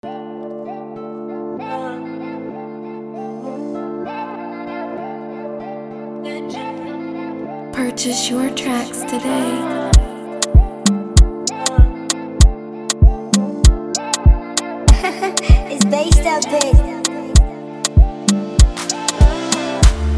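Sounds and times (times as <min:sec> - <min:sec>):
drum beat in F major: 0:10.0 - 0:11.9, 0:13.0 - 0:20.0.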